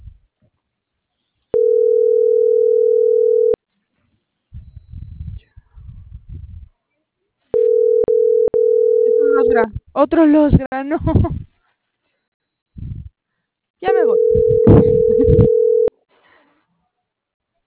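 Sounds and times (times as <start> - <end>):
ringback tone of an unanswered telephone call: 1.6 - 3.6, 7.6 - 9.6, 13.9 - 15.9
speech: 9.6 - 11.4.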